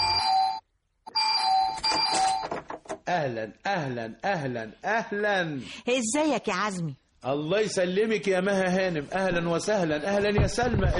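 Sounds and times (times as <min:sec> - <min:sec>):
apartment doorbell ringing with bright electronic chime tones: 0:00.0 - 0:02.4
speech: 0:03.1 - 0:10.9.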